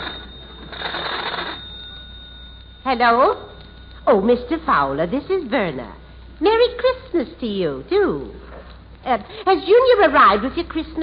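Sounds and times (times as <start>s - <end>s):
telephone ring heard through an earpiece: 0.0s - 4.9s
speech: 2.8s - 8.4s, 9.0s - 11.0s.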